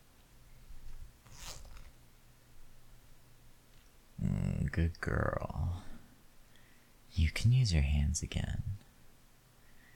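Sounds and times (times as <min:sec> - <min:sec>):
trouser zipper being pulled down: 0:01.2 - 0:02.0
speech: 0:04.8 - 0:05.9, 0:07.2 - 0:08.8.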